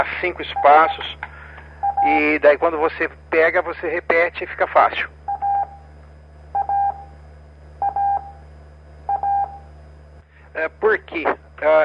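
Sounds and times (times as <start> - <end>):
speech: 0.0 - 1.3, 2.0 - 5.2, 10.6 - 11.8
low steady hum: 0.0 - 11.8
Morse code CW tone beeps: 0.5 - 1.0, 1.8 - 2.2, 5.3 - 5.8, 6.5 - 7.1, 7.8 - 8.4, 9.1 - 9.6.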